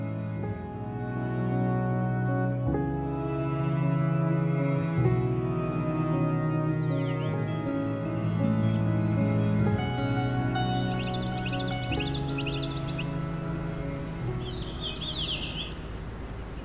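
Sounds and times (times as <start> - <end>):
sustained musical tones: 0.0 - 16.3
yellow warbler song phrase: 6.6 - 7.5, 10.6 - 13.2, 14.3 - 16.6.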